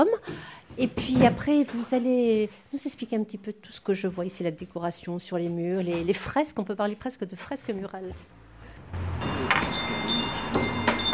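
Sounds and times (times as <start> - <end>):
speech: 0.0 - 9.2
small greeting door chime ringing in offices: 9.2 - 11.1.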